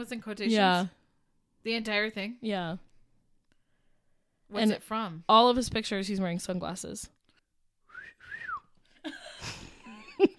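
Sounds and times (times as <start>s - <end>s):
speech: 0.0s - 1.0s, 1.6s - 2.9s, 4.5s - 7.2s
person whistling: 7.8s - 8.7s
laughter: 9.0s - 10.3s.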